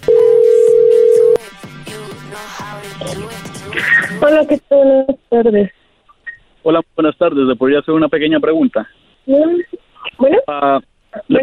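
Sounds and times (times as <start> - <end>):
telephone line tone as a call is dialed: 0.0 - 1.4
speech: 4.2 - 5.8, 6.6 - 11.4.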